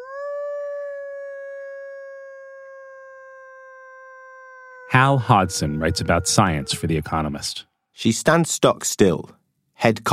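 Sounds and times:
woman biologist imitating a wolf howl on a cold Wisconsin night: 0.0s - 7.2s
speech: 4.9s - 10.1s.

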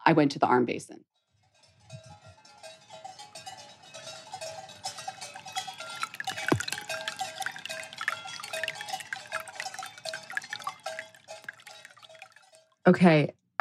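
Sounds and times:
speech: 0.0s - 1.1s, 12.9s - 13.5s
bright tinkling water drips: 1.4s - 12.9s
water trickling and splashing through a log basin: 3.4s - 12.8s.

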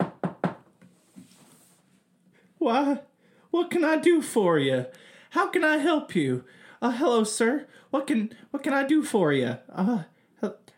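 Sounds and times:
knocking on a wooden door: 0.0s - 0.7s
speech: 2.6s - 10.7s.

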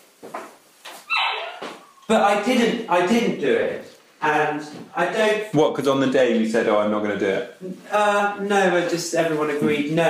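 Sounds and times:
dogs whining and whimpering: 1.0s - 2.1s
dogs barking: 1.1s - 2.0s
speech: 2.1s - 10.0s.

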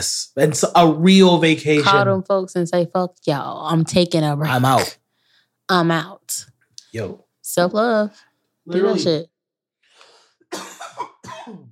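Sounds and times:
speech: 0.0s - 5.0s, 5.7s - 9.3s
person coughing: 10.5s - 11.7s.

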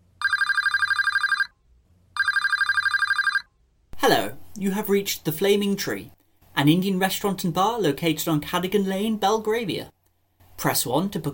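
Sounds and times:
warbling electronic telephone ringing tone on outgoing call to an Indian restaurant: 0.1s - 1.6s, 2.2s - 3.6s
speech: 4.0s - 10.0s, 10.6s - 11.3s.

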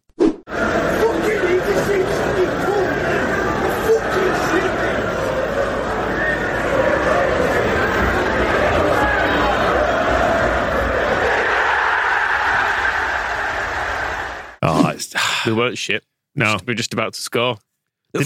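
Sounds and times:
big football crowd roaring and murmuring: 0.5s - 14.6s
speech: 15.5s - 18.2s.

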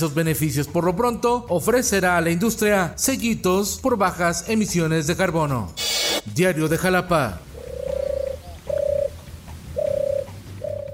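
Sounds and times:
speech: 0.0s - 7.5s
pigeons cooing: 7.4s - 10.9s.

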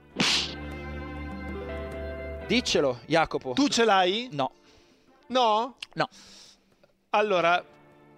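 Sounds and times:
slap sound effect: 0.2s - 0.7s
speech: 2.5s - 4.6s, 5.3s - 6.5s, 7.1s - 7.8s.

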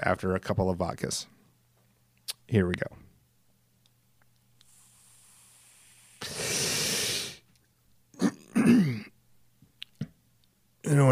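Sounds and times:
speech: 0.1s - 1.4s, 2.5s - 3.0s, 10.9s - 11.1s
person imitating a drag on a cigarette: 4.6s - 7.4s.

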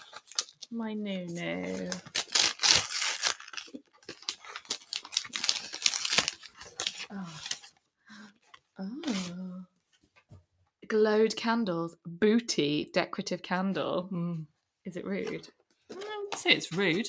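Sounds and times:
gift wrapping paper with seagull or dove pattern tearing and crinkling: 0.0s - 0.8s, 1.4s - 7.7s, 9.0s - 9.4s
speech: 0.7s - 2.2s, 11.1s - 15.6s, 16.4s - 17.0s.

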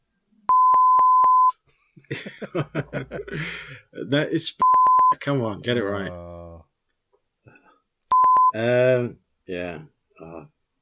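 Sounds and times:
censor bleep tone: 0.5s - 1.5s, 4.6s - 5.2s, 8.1s - 8.6s
laughter: 2.1s - 3.6s
speech: 2.1s - 6.6s, 8.5s - 10.6s.

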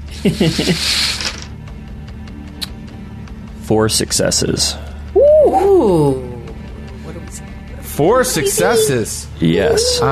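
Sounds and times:
speech: 0.2s - 1.0s, 3.7s - 6.2s, 8.0s - 10.1s
dice rattling and tumbling: 0.8s - 1.5s.

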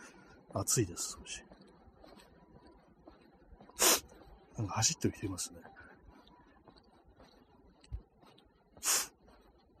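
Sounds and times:
faint outdoor background: 0.0s - 9.7s
speech: 0.5s - 1.5s, 4.6s - 5.8s
nose sniffing: 3.8s - 4.1s, 8.8s - 9.1s.

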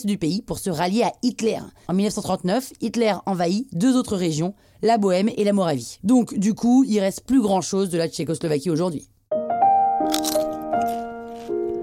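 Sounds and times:
speech: 0.0s - 9.1s
crisp crunchy bites of food: 10.0s - 11.8s.

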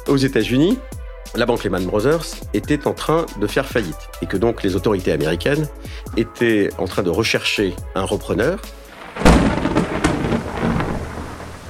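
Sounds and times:
speech: 0.1s - 9.9s
heavy rain pouring in New York on a Friday evening: 8.9s - 11.6s
sharp crack: 9.0s - 11.6s
deep rumbling burst: 9.2s - 11.6s.

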